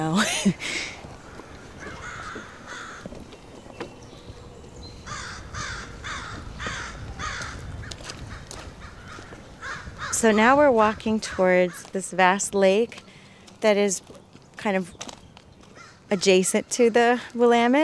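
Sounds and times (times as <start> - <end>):
speech: 0.0 - 1.0, 10.2 - 15.0, 16.1 - 17.8
low outdoor rumble: 0.0 - 11.6
crows cawing: 1.2 - 3.2, 5.0 - 12.0, 15.7 - 16.3.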